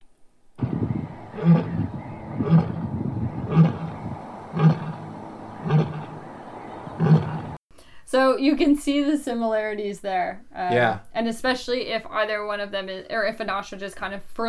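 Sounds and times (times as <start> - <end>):
lion roaring call with deep grunting roars: 0.6 - 7.6
speech: 1.4 - 1.8, 8.1 - 14.4.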